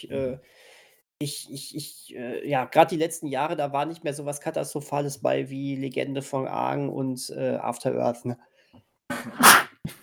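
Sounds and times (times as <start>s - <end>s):
speech: 0.0s - 10.0s
brief breath: 0.5s - 1.0s
quick inhale before a sneeze: 0.5s - 1.0s
person sneezing: 9.1s - 10.0s.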